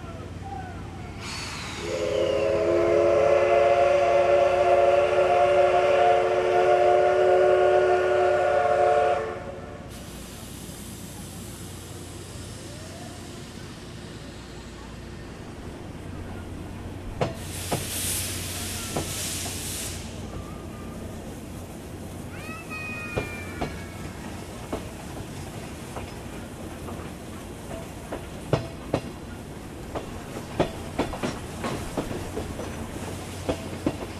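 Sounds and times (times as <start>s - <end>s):
steam locomotive rumbling into platform 5 bound for Nagatoro in Saitama Prefecture: 0.0s - 34.1s
steam locomotive steam hissing: 1.1s - 34.1s
steam locomotive whistle: 1.2s - 9.9s.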